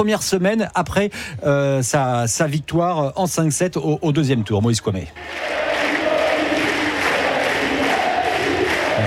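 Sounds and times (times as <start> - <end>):
speech: 0.0 - 5.8
large tennis stadium crowd chanting a player's name and roaring: 5.2 - 9.0.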